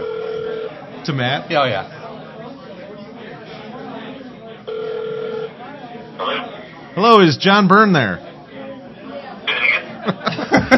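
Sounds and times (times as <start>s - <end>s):
telephone ring tone: 0.0s - 0.8s, 4.7s - 5.6s
people chattering: 0.0s - 10.7s
speech: 1.0s - 2.0s, 7.0s - 8.3s
laughter: 9.5s - 10.7s.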